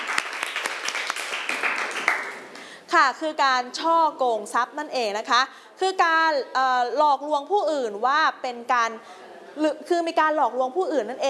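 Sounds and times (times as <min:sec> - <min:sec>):
students clapping in a lesson: 0:00.0 - 0:02.8
speech: 0:02.9 - 0:11.2.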